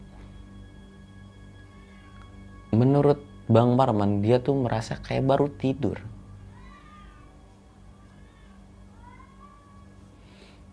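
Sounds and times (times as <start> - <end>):
steady low hum: 0.0 - 10.7
speech: 2.8 - 6.2
cats caterwauling while mating: 6.4 - 10.1.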